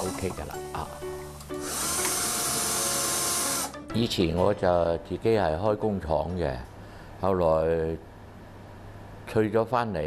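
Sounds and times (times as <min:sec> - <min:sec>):
speech: 0:00.0 - 0:01.5, 0:03.9 - 0:08.1, 0:09.3 - 0:10.0
power drill boring small holes into the back of a wooden door: 0:01.4 - 0:03.8.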